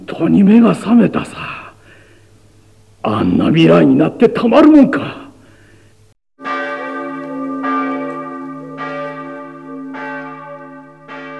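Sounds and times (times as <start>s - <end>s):
speech: 0.1s - 1.5s, 3.0s - 5.2s
Christmas church bells ringing: 6.4s - 11.3s.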